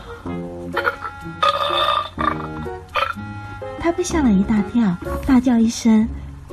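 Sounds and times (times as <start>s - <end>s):
comic hippo-style burps: 0.8s - 3.2s
speech: 3.8s - 6.2s.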